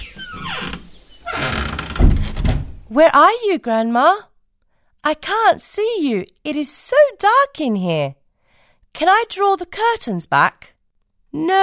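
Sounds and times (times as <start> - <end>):
door creaking open: 0.0 - 2.9
low thud: 1.8 - 2.9
speech: 2.9 - 4.3, 5.0 - 8.2, 8.9 - 10.7, 11.3 - 11.6.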